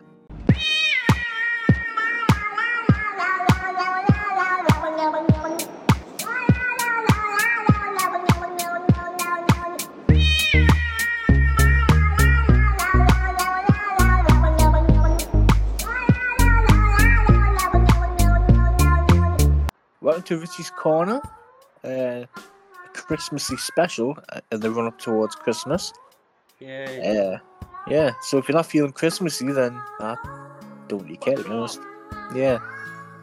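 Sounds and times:
cats meowing to a rhythmic beat in a musical jingle: 0.5 - 19.5, 22.6 - 26.1, 26.7 - 28.6, 29.4 - 30.5
deep bassline: 10.1 - 13.4, 14.0 - 15.8, 16.4 - 19.7
speech: 20.3 - 22.5, 23.1 - 26.0, 26.6 - 32.7.

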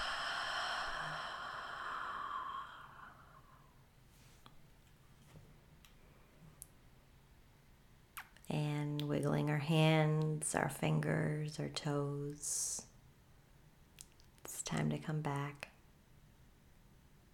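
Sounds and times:
slow exhale during a breathing exercise: 0.0 - 4.4
speech: 9.2 - 12.9, 14.7 - 15.7.

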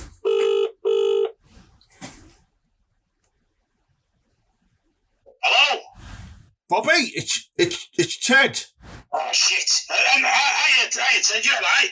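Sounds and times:
phone ringback tone on an outgoing call: 0.1 - 1.4
speech: 6.7 - 11.9.

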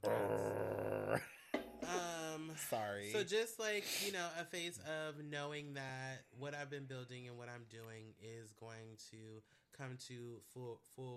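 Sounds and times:
dog growling: 0.0 - 1.3
speech: 0.0 - 1.3, 2.7 - 11.1.

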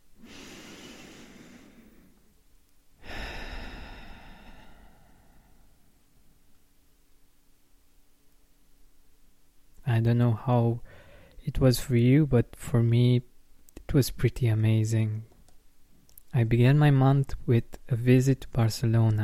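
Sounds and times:
deep breathing: 0.2 - 2.4, 3.0 - 6.3, 10.8 - 11.4
speech: 10.0 - 13.3, 13.9 - 15.3, 16.3 - 19.2.

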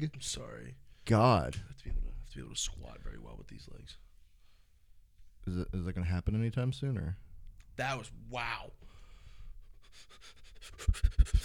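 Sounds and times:
speech: 0.0 - 4.0, 5.4 - 9.0, 10.0 - 11.4
people breathing heavily right against a microphone: 8.8 - 11.4
loud blowy puffs hitting the microphone: 10.6 - 11.4.

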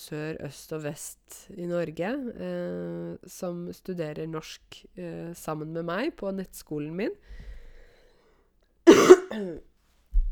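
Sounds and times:
speech: 0.0 - 7.5, 9.3 - 9.7
single loud cough with throaty rasp: 8.9 - 9.6.

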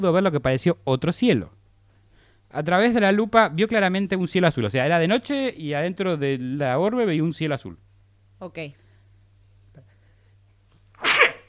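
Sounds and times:
speech: 0.0 - 1.6, 2.5 - 7.8, 8.4 - 8.8
single sharp breathy sneeze: 11.0 - 11.4.

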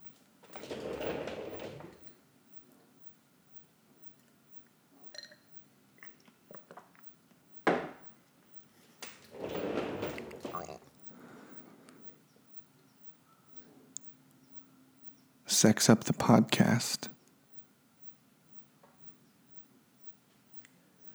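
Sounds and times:
chair casters rolling across the floor: 0.5 - 2.1, 9.0 - 10.9
speech: 15.6 - 17.2.

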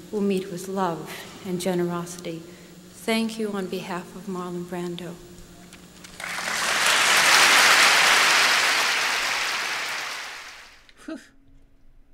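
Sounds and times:
speech: 0.1 - 5.3, 11.1 - 11.4
audience applauding after an on-stage speech: 6.0 - 10.9
crowd booing: 6.2 - 10.8.

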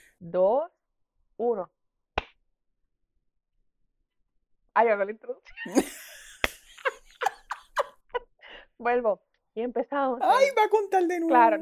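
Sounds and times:
speech: 0.2 - 0.7, 1.4 - 1.8, 4.8 - 6.1, 8.8 - 11.6
laughter: 5.7 - 8.0
single sharp hand clap: 6.4 - 6.9.

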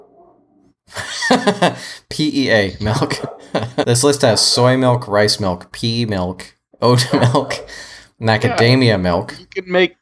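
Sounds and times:
dog barking: 0.0 - 0.5, 3.1 - 3.8
speech: 0.4 - 9.9
laughter: 0.9 - 1.9, 2.9 - 4.2, 6.9 - 7.7.

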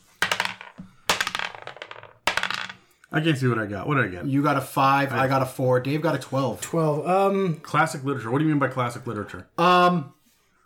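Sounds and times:
dice clattering and tumbling across a hard tabletop: 0.0 - 2.8
speech: 3.1 - 10.2.

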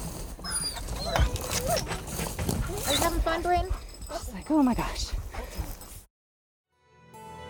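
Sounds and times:
steady rustling outdoor background: 0.0 - 6.1
search dog whimpering and whining: 0.4 - 3.2
speech: 4.5 - 5.2.

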